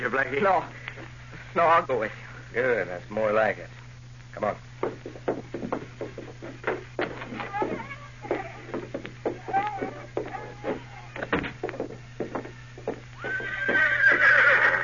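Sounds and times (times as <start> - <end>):
speech: 0.0 - 5.7
low constant hum: 0.0 - 14.8
hooves clip-clopping: 4.8 - 14.8
horse neighing: 13.2 - 14.8.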